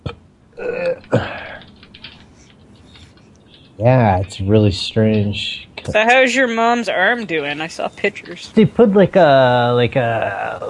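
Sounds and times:
person burping: 0:00.0 - 0:01.5
speech: 0:03.8 - 0:10.6.

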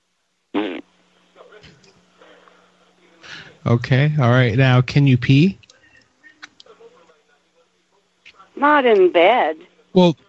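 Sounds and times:
raspberry blown with the lips imitating a fart: 0:00.5 - 0:00.9
speech: 0:03.6 - 0:05.6, 0:08.6 - 0:10.2.

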